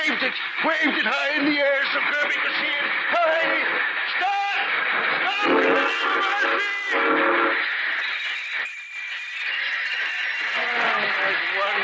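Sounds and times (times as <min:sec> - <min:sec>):
train stopping on split rails: 0:00.0 - 0:11.8
speech: 0:00.4 - 0:07.6
high whistle-like tones: 0:05.4 - 0:10.7.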